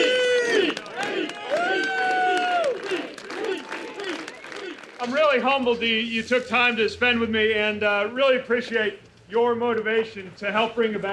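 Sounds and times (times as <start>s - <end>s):
crowd holding drawn-out chant-like cries: 0.0s - 4.9s
outdoor crowd cheering at a political rally in New Hampshire: 0.0s - 6.2s
speech: 5.3s - 11.1s.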